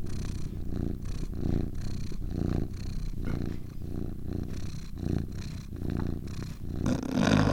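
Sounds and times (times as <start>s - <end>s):
cat purring: 0.0s - 7.5s.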